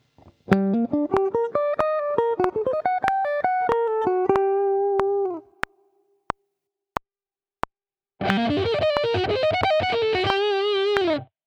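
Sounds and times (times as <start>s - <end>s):
guitar sweep picking: 0.2s - 5.5s, 8.2s - 11.3s.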